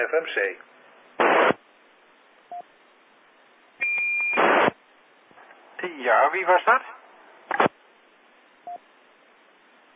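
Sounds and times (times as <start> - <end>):
speech: 0.0 - 1.5, 6.0 - 7.6
radio static bursts: 1.2 - 1.8, 4.3 - 4.8, 5.8 - 7.8
short electronic beeps: 3.8 - 4.4
voice asking a question over radio channel: 5.8 - 7.0.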